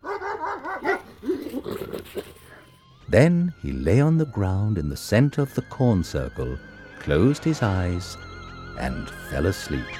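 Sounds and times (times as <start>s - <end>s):
dog giving loud yelping barks and rough woofs: 0.0s - 1.6s
speech: 3.1s - 9.9s.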